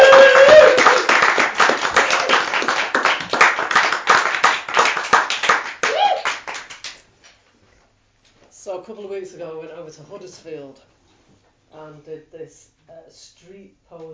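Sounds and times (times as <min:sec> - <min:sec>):
audience applause after a poetry performance: 0:00.0 - 0:07.0
speech: 0:08.9 - 0:11.0, 0:11.7 - 0:14.1.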